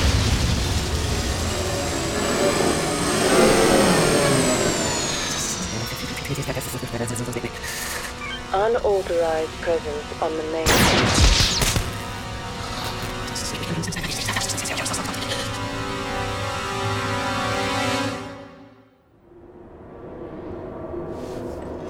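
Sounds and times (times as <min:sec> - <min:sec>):
sustained tonal drone: 0:00.0 - 0:21.8
gunfire in a firefight: 0:10.7 - 0:12.2.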